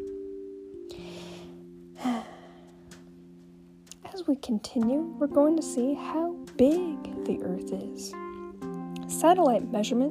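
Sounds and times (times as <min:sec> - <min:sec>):
breathy exhale like a sigh: 0:00.9 - 0:02.9
person deep inhale: 0:00.9 - 0:02.9
speech: 0:04.2 - 0:08.2, 0:09.1 - 0:10.0.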